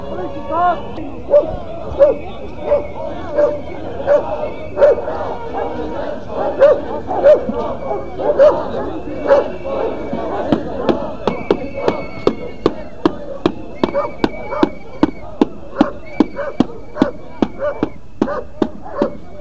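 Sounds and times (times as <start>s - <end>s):
murmur of protest crowd voices: 0.0s - 19.3s
speech: 0.5s - 4.6s
police dogs barking at a protest: 1.2s - 11.0s, 13.3s - 14.8s, 15.7s - 19.3s.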